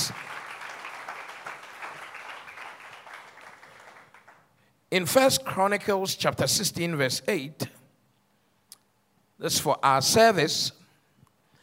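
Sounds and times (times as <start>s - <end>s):
audience clapping at a church worship service: 0.0s - 4.7s
speech: 4.9s - 7.7s, 9.4s - 10.8s.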